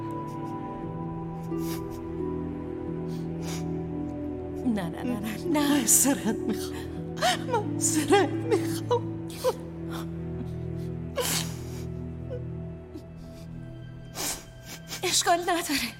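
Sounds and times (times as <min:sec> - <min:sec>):
woman crying and sobbing: 0:00.0 - 0:15.9
speech: 0:04.8 - 0:10.2, 0:15.2 - 0:15.9.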